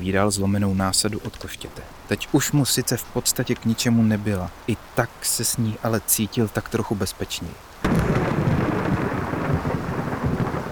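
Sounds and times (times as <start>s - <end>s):
speech: 0.0s - 8.3s
rain in a storm: 0.0s - 10.7s
thunder rumbling in a storm: 7.8s - 10.7s.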